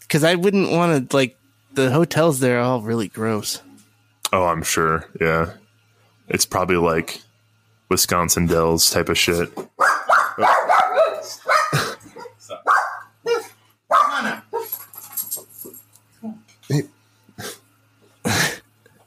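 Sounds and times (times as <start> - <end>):
speech: 0.1 - 3.7, 4.3 - 5.6, 6.3 - 7.3, 7.9 - 11.9, 16.7 - 17.5
dog barking in short sharp bursts: 9.8 - 14.8.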